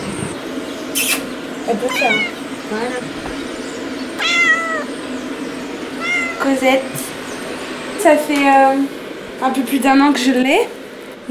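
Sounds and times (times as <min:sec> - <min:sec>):
cat meowing on a balcony: 0:00.0 - 0:00.4, 0:01.8 - 0:07.1
steady low hum: 0:00.0 - 0:11.2
speech: 0:01.0 - 0:03.4, 0:06.4 - 0:07.0, 0:08.0 - 0:11.2.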